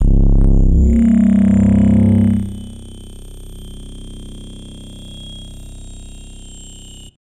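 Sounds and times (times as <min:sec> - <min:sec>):
alien bass impacts: 0:00.0 - 0:03.5.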